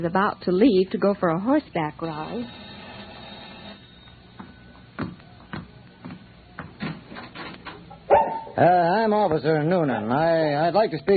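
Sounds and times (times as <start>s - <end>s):
speech: 0.0s - 2.6s, 8.6s - 11.1s
dogs barking at a little house in eastern Denver: 8.0s - 8.7s.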